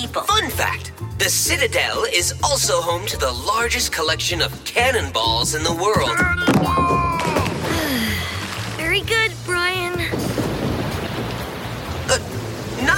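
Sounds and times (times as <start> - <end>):
speech: 0.0 - 7.4
heavy tropical rain shower: 7.2 - 12.9
deep thunder rumbling: 9.9 - 12.9.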